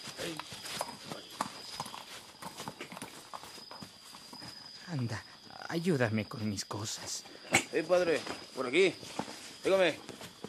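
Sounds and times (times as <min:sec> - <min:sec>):
horse hooves clip-clopping at a walking pace: 0:00.0 - 0:05.4, 0:07.6 - 0:10.4
speech: 0:04.9 - 0:10.2.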